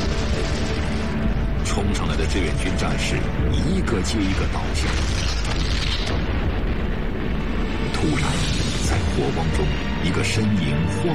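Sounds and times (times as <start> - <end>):
hand grenade exploding against a bunker in battle: 0.0 - 1.7, 4.2 - 9.6
speech: 1.8 - 6.5, 8.0 - 11.1.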